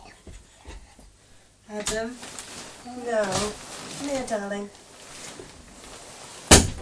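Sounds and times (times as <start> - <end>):
speech: 1.8 - 2.4, 3.0 - 4.9
door shut by a young boy with a sharp loud thud: 6.5 - 6.8.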